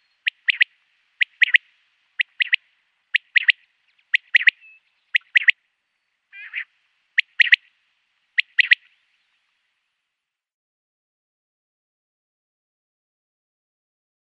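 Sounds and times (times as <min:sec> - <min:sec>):
male common quail display call: 0:00.0 - 0:05.6, 0:06.3 - 0:07.7, 0:08.3 - 0:09.0.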